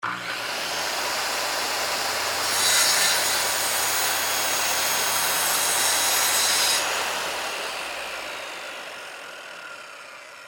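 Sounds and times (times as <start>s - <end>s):
industrial circular saw cutting a 2X4 wood board: 0.0s - 10.4s.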